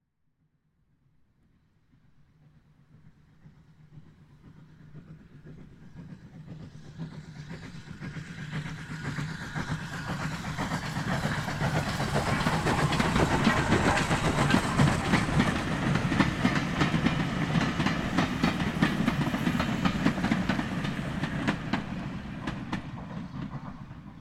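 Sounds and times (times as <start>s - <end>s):
steam train passing close by: 2.4s - 24.1s.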